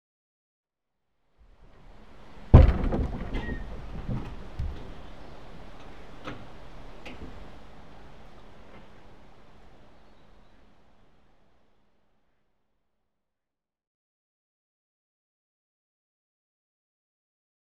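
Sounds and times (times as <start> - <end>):
river water flowing at lock gates: 1.5 - 11.8.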